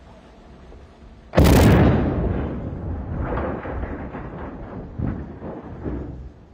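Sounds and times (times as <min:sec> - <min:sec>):
explosive blast demolishing bridge sections on a giant container ship: 0:01.4 - 0:06.4.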